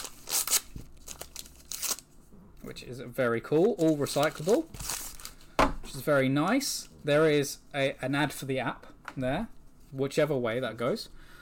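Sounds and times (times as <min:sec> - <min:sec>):
recyclable paper trading card pack being torn open: 0:00.0 - 0:02.0, 0:03.6 - 0:05.4
speech: 0:02.6 - 0:04.9, 0:06.0 - 0:11.2.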